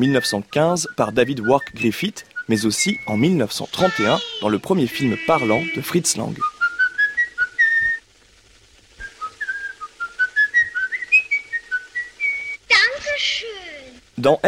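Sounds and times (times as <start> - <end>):
speech: 0.0 - 6.6, 14.2 - 14.4
man whistling a classical orchestral melody: 0.2 - 3.4, 4.9 - 8.0, 9.0 - 12.6.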